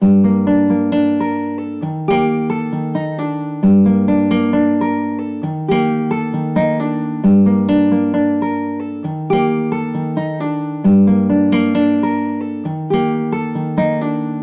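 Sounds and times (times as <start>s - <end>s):
dark guitar melody in G minor: 0.0s - 14.4s.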